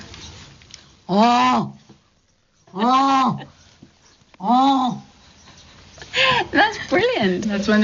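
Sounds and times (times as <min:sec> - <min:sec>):
person's voice imitating a jackass penguin's donkey-like braying call: 0:01.1 - 0:01.8, 0:04.4 - 0:05.1
speech: 0:01.1 - 0:01.8, 0:02.8 - 0:03.6, 0:04.4 - 0:05.0, 0:06.5 - 0:07.8.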